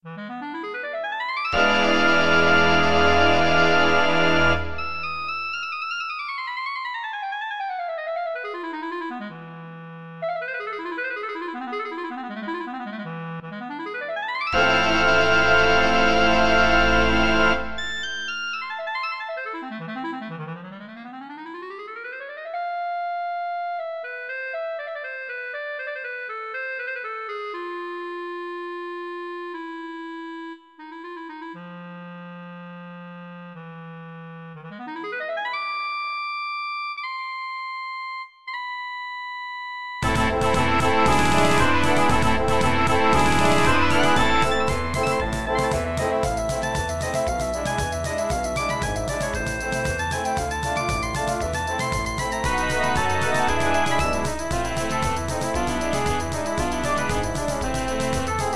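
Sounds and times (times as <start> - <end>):
clarinet playing: 0.1 - 58.5
band playing: 1.6 - 5.5, 14.6 - 18.2, 40.0 - 58.5.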